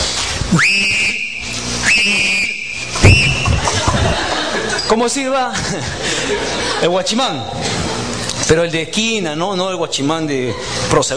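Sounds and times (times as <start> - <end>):
speech: 0.5 - 1.0, 4.9 - 7.8, 8.5 - 11.1
person imitating a football referee's whistle: 0.5 - 3.7
laughter: 3.1 - 8.3.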